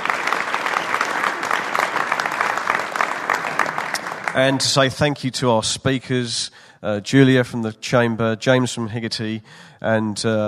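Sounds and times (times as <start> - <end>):
room full of people applauding: 0.0 - 5.0
speech: 4.4 - 10.4.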